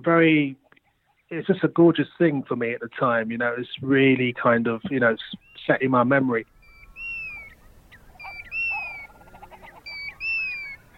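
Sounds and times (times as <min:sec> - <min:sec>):
speech: 0:00.0 - 0:00.6, 0:01.3 - 0:06.5
Eurasian curlew whistling calls: 0:05.2 - 0:10.9.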